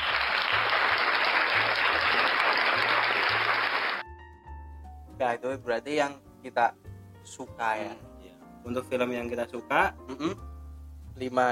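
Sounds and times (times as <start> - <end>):
crowd of many hands clapping together: 0.0 - 4.1
speech: 5.3 - 10.5, 11.2 - 11.4.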